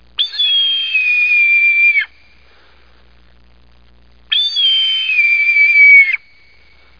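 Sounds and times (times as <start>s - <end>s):
red-tailed hawk call: 0.2s - 2.3s, 4.3s - 6.5s.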